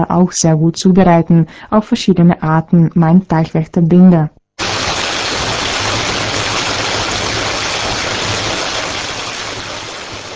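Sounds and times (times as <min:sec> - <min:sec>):
speech: 0:00.0 - 0:04.7
water draining out of a fish pond: 0:04.6 - 0:10.3.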